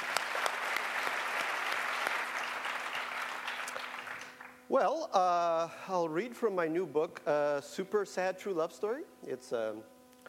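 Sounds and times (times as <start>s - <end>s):
audience applause: 0.0s - 4.6s
speech: 4.7s - 9.9s.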